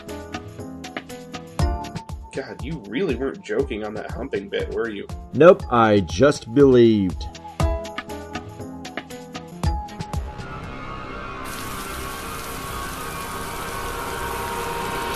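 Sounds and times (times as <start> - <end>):
speech: 2.4 - 7.4
rain falling: 11.4 - 15.1.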